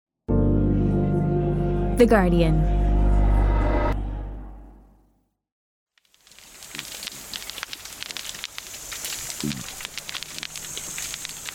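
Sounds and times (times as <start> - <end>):
low tone: 0.3 - 5.1
speech: 2.0 - 2.8
dense underwater crackling of pistol shrimp: 6.0 - 11.5
short low underwater cod grunt: 9.4 - 9.9.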